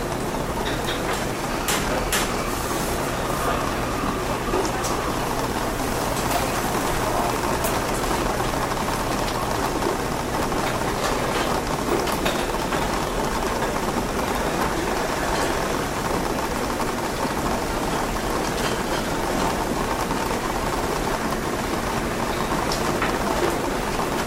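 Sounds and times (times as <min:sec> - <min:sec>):
rain tapping against a coffee shop window: 0:00.0 - 0:24.2.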